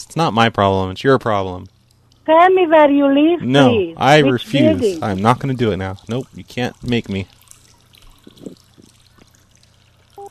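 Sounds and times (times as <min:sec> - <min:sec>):
speech: 0:00.0 - 0:07.4
constant hum: 0:00.0 - 0:10.2
water trickling and pouring in a steady low stream: 0:04.4 - 0:10.2.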